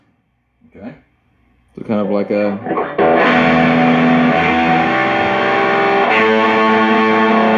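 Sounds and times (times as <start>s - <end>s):
speech: 0.7s - 1.1s, 1.8s - 3.7s
electric guitar chords played through a fuzz pedal: 2.0s - 7.5s.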